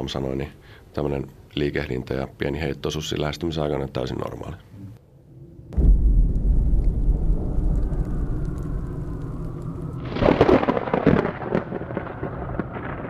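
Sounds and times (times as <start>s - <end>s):
speech: 0.0s - 4.7s
heavy thunderclap rolling into deep rumble: 5.5s - 13.0s.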